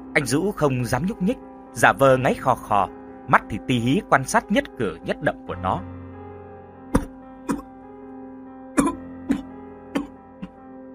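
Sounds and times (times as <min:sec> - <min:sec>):
speech: 0:00.1 - 0:05.9
harsh violent coughing: 0:08.8 - 0:10.2.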